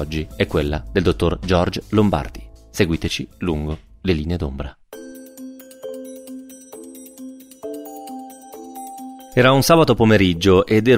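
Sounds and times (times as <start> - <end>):
speech: 0.0 - 4.8, 9.4 - 10.9
home telephone ringing with a melodic tone: 5.0 - 9.4.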